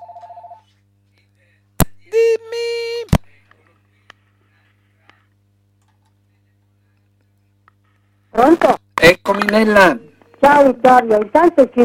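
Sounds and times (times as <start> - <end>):
telephone ringing with electronic trills for incoming call: 0.0 - 0.7
faint steady hum: 0.0 - 11.8
speech: 8.4 - 11.8.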